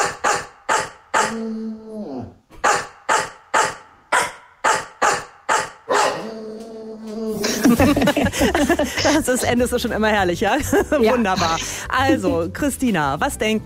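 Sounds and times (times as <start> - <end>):
bulldog barks edited into pop song melody: 0.0 - 1.4, 2.6 - 6.2
dog howling barks: 0.0 - 7.4
speech: 1.3 - 1.9, 7.6 - 13.6
laughter: 7.3 - 9.5, 10.6 - 12.0.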